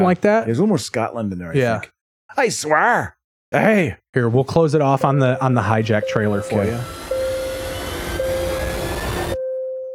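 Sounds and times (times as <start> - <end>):
speech: 0.0 - 7.0
sustained droning tonal hum of Airbus airliner jet engine: 5.9 - 9.5
Airbus airliner jet engine roar: 6.3 - 9.4.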